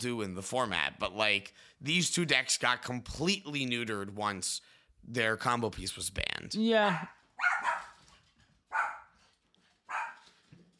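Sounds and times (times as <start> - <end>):
speech: 0.0 - 7.7
dog barking: 6.9 - 8.0, 8.7 - 9.2, 9.9 - 10.3.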